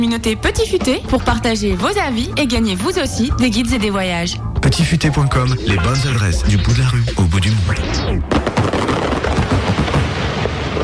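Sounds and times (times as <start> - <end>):
speech: 0.0 - 9.6
fireworks pyrotechnic effect crackling, popping and booming: 8.2 - 10.8.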